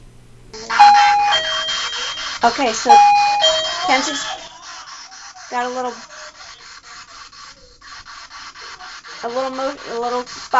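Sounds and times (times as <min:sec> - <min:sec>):
electronic motion detector doorbell ding-dong chime: 0:00.8 - 0:02.3, 0:02.9 - 0:04.5
speech: 0:02.4 - 0:04.4, 0:05.5 - 0:06.1, 0:09.2 - 0:10.5.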